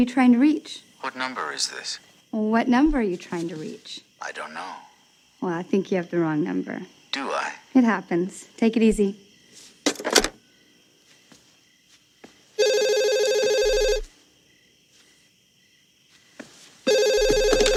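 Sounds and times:
speech: 0.0 - 9.2, 9.9 - 10.3
telephone ringing with electronic trilling: 12.6 - 14.1, 16.9 - 17.7.

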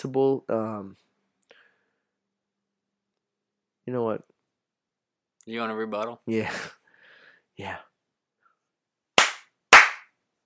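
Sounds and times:
speech: 0.0 - 1.1, 3.9 - 4.3, 5.5 - 6.8, 7.6 - 7.9
sharp hand slaps: 9.2 - 10.2.

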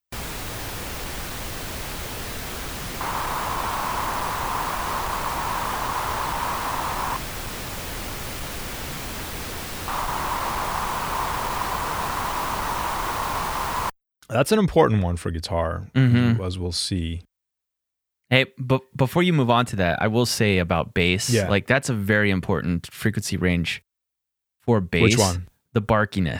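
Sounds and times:
steady broadband pink noise: 0.0 - 13.9
speech: 14.3 - 17.3, 18.3 - 23.9, 24.7 - 26.3.

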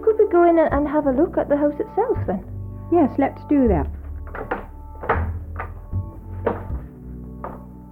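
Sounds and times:
speech: 0.3 - 4.4
wooden door being opened with hollow thunks and knocks: 4.0 - 6.9.

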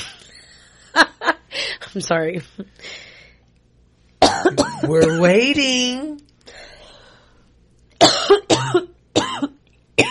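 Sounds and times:
speech: 1.9 - 2.9, 4.4 - 6.2
person coughing: 4.2 - 5.2, 8.0 - 10.0.

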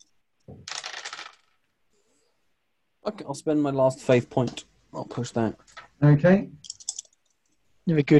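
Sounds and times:
two dice tumbling onto a hard surface: 0.0 - 1.6
speech: 3.0 - 6.6, 7.9 - 8.1.

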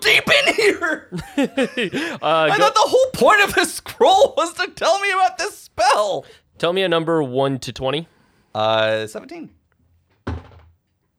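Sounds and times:
laughter: 0.0 - 4.6
speech: 0.6 - 9.6
creatures slamming against a door: 10.2 - 10.8.

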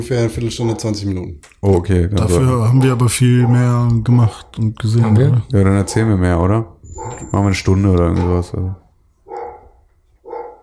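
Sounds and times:
speech: 0.0 - 8.8
dog barking: 0.6 - 1.0, 2.8 - 3.8, 5.0 - 6.2, 7.0 - 7.3, 9.2 - 10.6.

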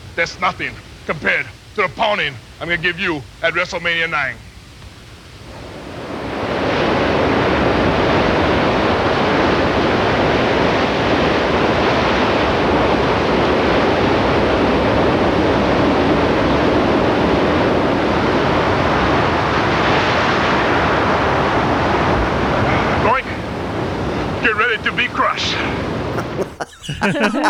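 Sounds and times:
speech: 0.2 - 4.4
gusty wind: 4.4 - 26.5
ocean surf crashing against rocks: 5.6 - 26.2
laughter: 26.1 - 27.4.

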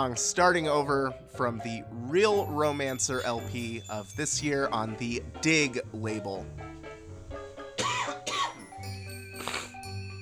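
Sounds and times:
speech: 0.0 - 6.8
faint music: 0.0 - 10.2
person coughing harshly: 7.8 - 8.6.

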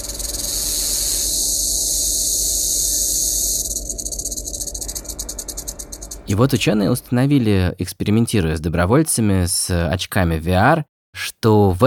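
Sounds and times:
rattlesnake rattle buzzing: 0.0 - 6.6
speech: 6.3 - 11.8.

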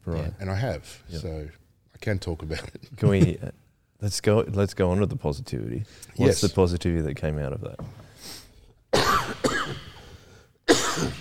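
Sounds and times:
speech: 0.1 - 8.4
person coughing harshly: 9.0 - 10.1, 10.7 - 11.1.

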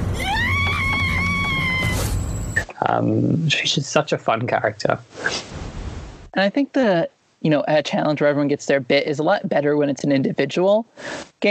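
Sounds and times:
cartoon character screaming: 0.0 - 2.2
speech: 2.9 - 5.5, 6.4 - 11.5.

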